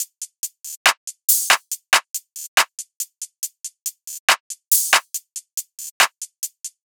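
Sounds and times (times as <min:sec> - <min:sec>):
drum loop: 0:00.0 - 0:06.8.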